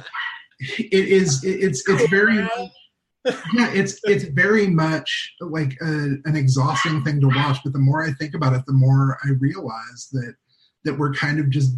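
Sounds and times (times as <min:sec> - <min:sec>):
laughter: 0:00.0 - 0:02.6, 0:03.3 - 0:10.3, 0:10.9 - 0:11.7
speech: 0:00.0 - 0:11.7
dog barking and yipping: 0:06.7 - 0:07.6.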